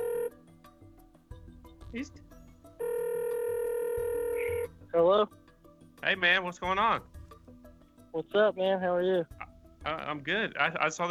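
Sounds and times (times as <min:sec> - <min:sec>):
telephone ringback tone while a call is dialing: 0:00.0 - 0:00.4, 0:02.8 - 0:04.7
speech: 0:01.9 - 0:02.4, 0:05.0 - 0:05.4, 0:06.0 - 0:07.1, 0:08.2 - 0:11.0.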